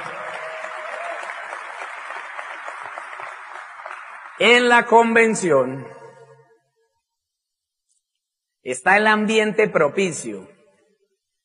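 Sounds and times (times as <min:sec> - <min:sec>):
large audience applauding: 0:00.0 - 0:04.7
speech: 0:04.4 - 0:06.0, 0:08.7 - 0:10.6.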